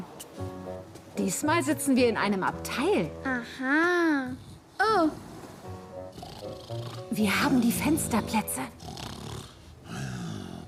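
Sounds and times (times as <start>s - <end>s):
speech: 1.2s - 5.3s, 6.7s - 8.8s
loud rumbling snoring: 6.1s - 10.6s.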